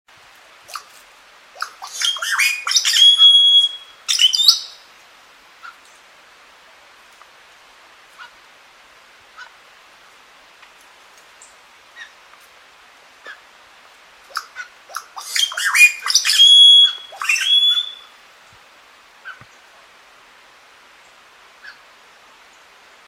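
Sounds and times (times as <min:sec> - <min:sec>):
candela cacique bird song: 0:01.8 - 0:04.8, 0:15.2 - 0:18.1.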